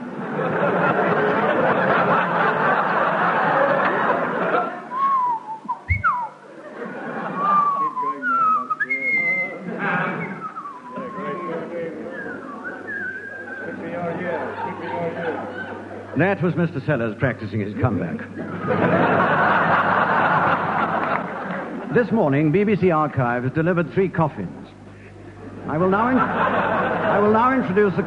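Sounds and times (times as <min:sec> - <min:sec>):
laughter: 0:00.0 - 0:08.7, 0:09.3 - 0:16.5, 0:18.2 - 0:22.0, 0:25.0 - 0:28.0
dense noisy crowd-like sound: 0:00.0 - 0:28.0
person whistling a wandering melody with sliding notes and trills: 0:04.9 - 0:06.4, 0:07.6 - 0:09.5, 0:12.1 - 0:13.7
speech: 0:16.2 - 0:19.8, 0:21.9 - 0:24.6, 0:25.7 - 0:26.4, 0:27.2 - 0:28.0.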